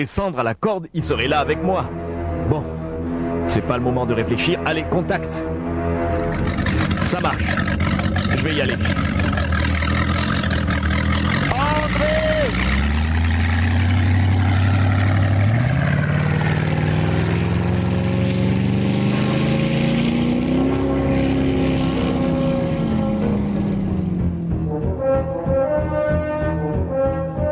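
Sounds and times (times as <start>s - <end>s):
speech: 0.0s - 2.7s, 3.5s - 9.4s
motorboat engine speeding away across the sea: 5.6s - 27.1s.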